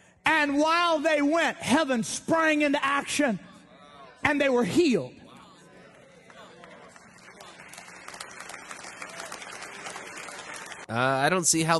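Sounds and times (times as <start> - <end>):
speech: 0.4 - 3.5, 4.2 - 5.2, 10.9 - 11.7
audience applause: 6.2 - 11.3.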